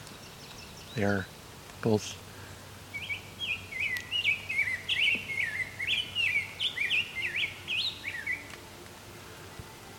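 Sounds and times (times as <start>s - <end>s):
grosbeak singing a warbling song on a trail: 0.0s - 1.3s, 2.4s - 8.6s
speech: 1.0s - 2.2s.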